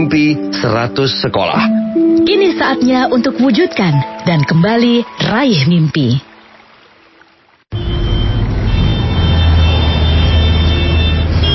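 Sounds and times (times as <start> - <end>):
speech: 0.0 - 6.3
vehicle engines and road noise in a traffic jam: 7.7 - 11.5.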